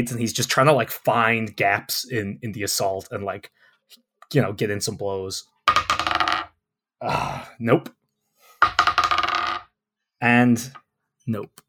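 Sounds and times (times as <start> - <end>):
speech: 0.0 - 5.5, 7.0 - 8.0, 10.2 - 11.6
two dice clattering onto a hard table during a tabletop game: 5.7 - 6.5, 8.6 - 9.7.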